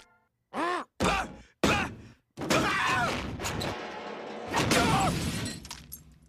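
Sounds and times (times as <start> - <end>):
man groaning: 0.5 - 2.9
candy vending machine crashing down: 3.2 - 5.9.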